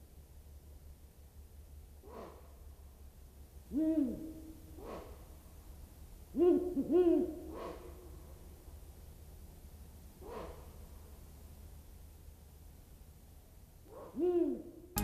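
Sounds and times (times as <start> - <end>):
steady hiss of outdoor noise: 0.0 - 15.0
Ural owl harsh dog-like barking calls: 2.0 - 2.5, 3.7 - 5.4, 6.3 - 8.5, 10.2 - 11.0, 13.9 - 14.9
speech: 3.7 - 4.3, 6.3 - 7.3.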